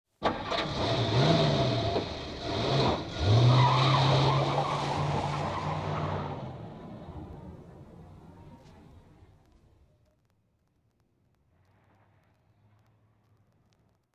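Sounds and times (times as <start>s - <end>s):
car jackrabbit start in a big city: 0.2s - 9.0s.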